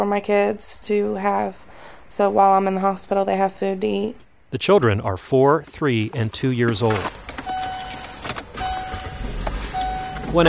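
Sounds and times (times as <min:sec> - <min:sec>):
speech: 0:00.0 - 0:07.3
car driving heard from inside the cabin: 0:05.7 - 0:10.4.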